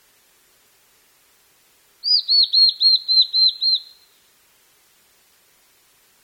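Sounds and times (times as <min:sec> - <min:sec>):
blue-and-white flycatcher singing clear slurred whistled notes: 0:02.0 - 0:04.2.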